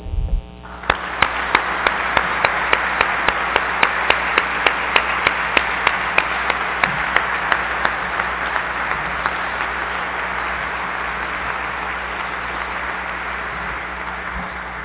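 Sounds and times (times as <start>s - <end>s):
audience at an award presentation applauding: 0.6s - 14.8s
sharp rhythmic claps: 0.6s - 14.8s.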